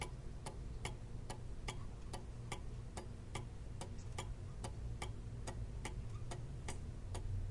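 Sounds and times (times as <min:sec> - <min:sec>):
clock hands moving: 0:00.0 - 0:07.3.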